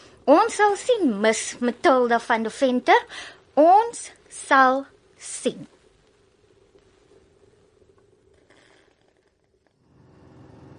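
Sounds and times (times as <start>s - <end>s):
speech: 0.3s - 5.8s
low car engine drone heard from inside while driving: 9.8s - 10.7s.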